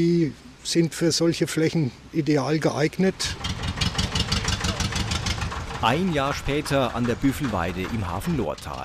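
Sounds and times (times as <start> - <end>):
speech: 0.0 - 3.6, 5.8 - 8.8
tractor diesel engine driving up: 3.3 - 8.8.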